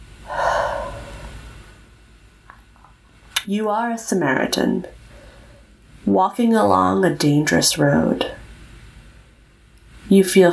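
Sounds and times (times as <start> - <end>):
group taking a deep breath during a guided reflection exercise: 0.3 - 1.8, 5.0 - 5.7
speech: 3.4 - 5.0, 6.1 - 8.4, 10.1 - 10.5.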